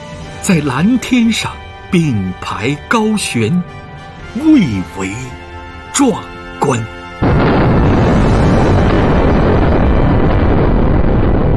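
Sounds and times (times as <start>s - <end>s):
speech: 0.4s - 3.8s, 4.4s - 5.4s, 6.0s - 7.0s
hydrogen bomb explosion roaring rumble: 7.2s - 11.5s.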